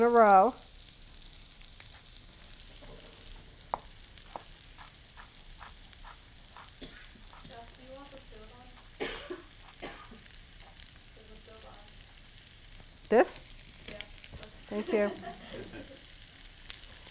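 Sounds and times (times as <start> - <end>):
speech: 0.0 - 0.7, 15.0 - 15.4
ginger stir-frying in a hot pan on an electric stove: 0.0 - 17.0
person coughing or clearing throat: 6.8 - 7.2, 9.0 - 10.3, 15.3 - 16.0
laughter: 14.7 - 16.1.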